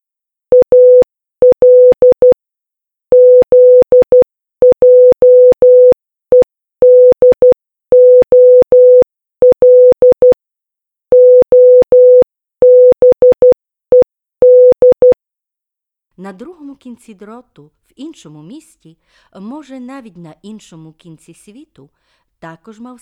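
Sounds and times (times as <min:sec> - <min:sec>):
Morse code telegraph signals of short and long electronic beeps: 0:00.5 - 0:02.4, 0:03.1 - 0:10.4, 0:11.1 - 0:15.2
speech: 0:16.2 - 0:22.9.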